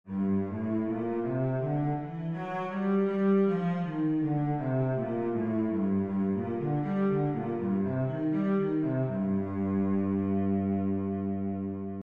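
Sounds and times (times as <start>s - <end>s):
cello playing a G minor scale: 0.1s - 12.0s.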